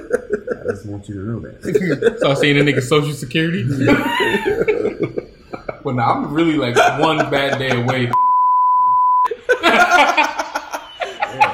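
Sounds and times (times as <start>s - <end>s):
lively laughter from several people: 0.0s - 8.2s, 9.3s - 11.5s
speech: 0.7s - 5.2s, 5.8s - 8.2s
high-pitched censor bleep: 8.2s - 9.3s.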